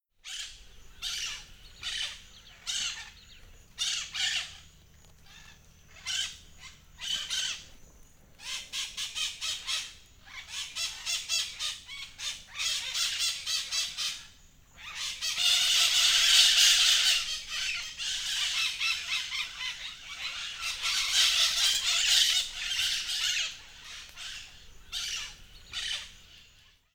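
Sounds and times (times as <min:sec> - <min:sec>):
parrots squawking: 0:00.2 - 0:03.2, 0:03.8 - 0:04.6, 0:05.3 - 0:07.6, 0:08.4 - 0:14.2, 0:14.8 - 0:26.4.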